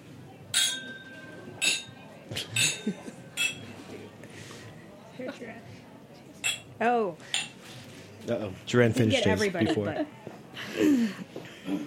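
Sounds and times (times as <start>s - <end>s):
faint murmuring voices: 0.0s - 11.8s
glasses of whisky clinking in a toast: 0.5s - 2.0s, 2.6s - 3.8s, 6.4s - 7.6s
speech: 2.8s - 3.1s, 6.8s - 7.3s, 8.3s - 11.8s.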